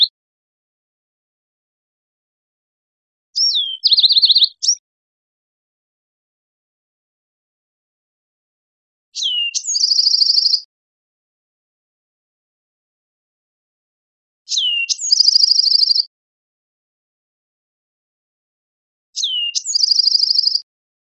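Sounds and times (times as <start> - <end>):
Bewick's wren singing: 3.4 - 4.8, 9.2 - 10.7, 14.5 - 16.1, 19.2 - 20.7.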